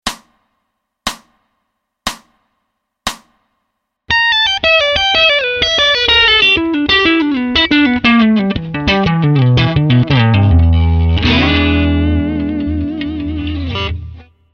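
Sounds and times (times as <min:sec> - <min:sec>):
slow blues pentatonic melody: 0:04.1 - 0:14.4.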